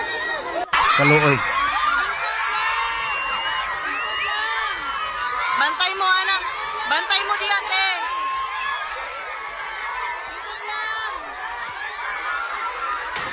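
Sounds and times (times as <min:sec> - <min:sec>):
crowd of children crying and shouting: 0:00.0 - 0:13.3
speech: 0:01.0 - 0:01.6.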